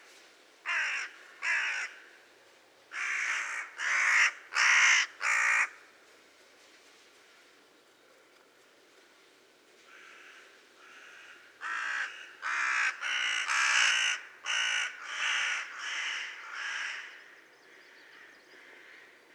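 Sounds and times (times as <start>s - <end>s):
carrion crow Corvus corone cawing: 0.7s - 2.1s, 2.9s - 5.8s, 9.9s - 17.2s.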